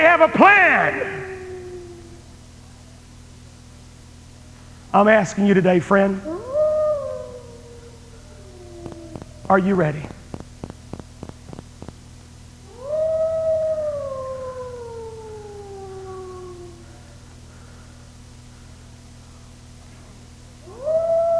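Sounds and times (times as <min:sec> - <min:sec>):
wolf howling: 0:00.0 - 0:02.4, 0:06.1 - 0:10.3, 0:12.6 - 0:17.2, 0:20.6 - 0:21.3
steady low hum: 0:00.0 - 0:21.3
speech: 0:00.1 - 0:01.3, 0:04.9 - 0:06.4, 0:09.5 - 0:10.2.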